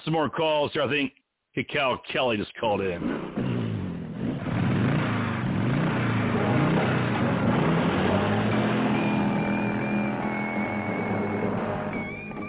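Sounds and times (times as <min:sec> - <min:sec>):
speech: 0:00.1 - 0:03.4
motorcycle engine revving: 0:03.0 - 0:12.4.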